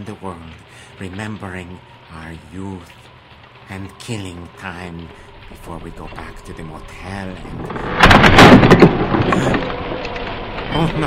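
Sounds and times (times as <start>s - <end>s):
speech: 0.0s - 3.1s, 3.7s - 11.0s
heavy rain pouring: 0.0s - 11.0s
crackling thunder: 5.8s - 11.0s.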